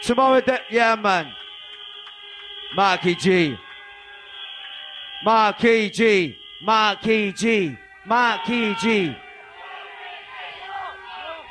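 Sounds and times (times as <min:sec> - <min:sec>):
speech: 0:00.0 - 0:01.4, 0:02.7 - 0:03.6, 0:05.2 - 0:09.2
big crowd cheering and chanting in unison: 0:00.0 - 0:11.4.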